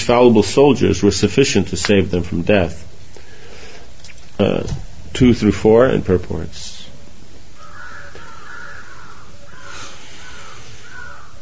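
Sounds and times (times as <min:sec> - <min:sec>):
speech: 0:00.0 - 0:02.9, 0:04.4 - 0:06.7
low outdoor rumble: 0:00.0 - 0:11.4
crow cawing: 0:07.5 - 0:11.4.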